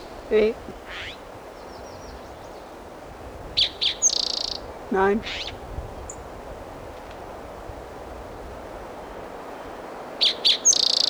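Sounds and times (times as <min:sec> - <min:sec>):
Virginia warbler singing: 0:00.0 - 0:02.8, 0:03.5 - 0:06.2, 0:10.2 - 0:11.0
faint bird chirp: 0:00.0 - 0:02.8, 0:03.6 - 0:06.2, 0:09.6 - 0:11.0
steady hiss: 0:00.0 - 0:11.0
speech: 0:00.3 - 0:01.2, 0:04.9 - 0:05.6.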